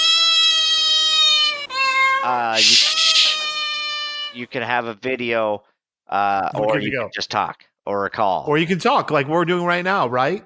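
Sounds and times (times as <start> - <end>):
cat meowing loudly and insistently: 0.0 - 4.4
speech: 2.2 - 3.2, 4.4 - 10.4.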